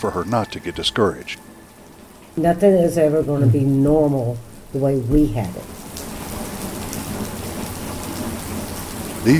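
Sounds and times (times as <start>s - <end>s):
speech: 0.0s - 1.5s, 2.4s - 5.8s
steady rain falling on a hurricane-damaged home in Callaway Florida: 0.0s - 9.3s.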